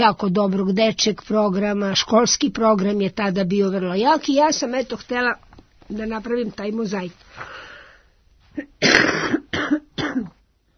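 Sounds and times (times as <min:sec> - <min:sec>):
speech: 0:00.0 - 0:07.6
person coughing harshly: 0:08.6 - 0:10.4.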